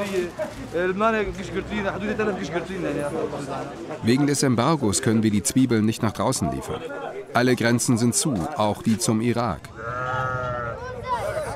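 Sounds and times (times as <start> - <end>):
speech: 0.0 - 10.2
continuous low din of the sheep herd: 9.7 - 10.8
sheep bleating in herds at a traditional livestock market: 9.7 - 10.8.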